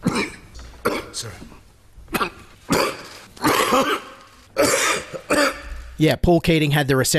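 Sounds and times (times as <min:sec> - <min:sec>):
man coughing in a harsh phlegmy fit while giving an economic budget speech: 0:00.0 - 0:01.4, 0:02.1 - 0:05.9
throat clearing: 0:00.0 - 0:01.4, 0:02.1 - 0:05.8
speech: 0:00.8 - 0:01.6, 0:02.2 - 0:02.4, 0:03.8 - 0:04.1, 0:06.0 - 0:07.1.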